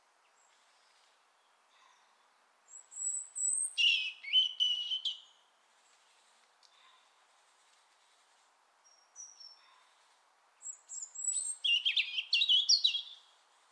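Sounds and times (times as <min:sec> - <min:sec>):
European robin Erithacus rubecula singing: 0:00.2 - 0:05.4, 0:08.8 - 0:09.8, 0:10.6 - 0:13.3.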